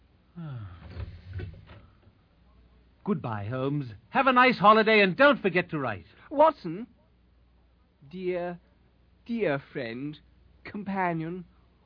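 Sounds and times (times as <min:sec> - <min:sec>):
door creaking open: 0:00.4 - 0:02.2
door clunks and rubbing noises: 0:00.8 - 0:02.2
speech: 0:03.1 - 0:07.0, 0:08.1 - 0:08.6, 0:09.3 - 0:11.5.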